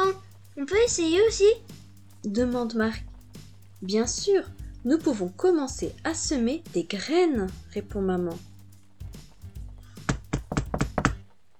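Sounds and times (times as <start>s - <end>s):
speech: 0.7s - 3.1s, 3.8s - 8.5s
solid knocks on a door: 10.0s - 11.2s.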